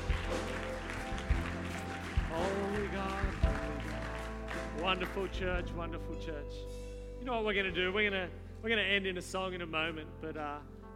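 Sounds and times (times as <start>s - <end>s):
room full of people applauding: 0.0s - 5.7s
speech: 4.8s - 10.9s.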